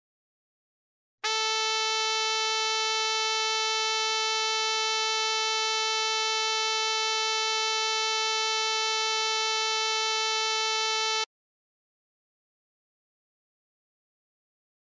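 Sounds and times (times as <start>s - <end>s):
440 Hz tone: 1.3s - 11.3s.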